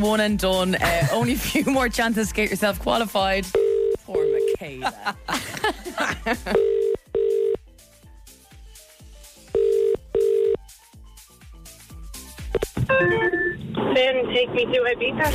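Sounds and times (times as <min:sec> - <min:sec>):
speech: 0:00.0 - 0:06.9, 0:12.9 - 0:15.3
busy music: 0:00.0 - 0:15.3
laughter: 0:00.8 - 0:01.8, 0:04.8 - 0:06.6
telephone ringback tone during outgoing call: 0:03.6 - 0:04.6, 0:06.5 - 0:07.6, 0:09.5 - 0:10.6.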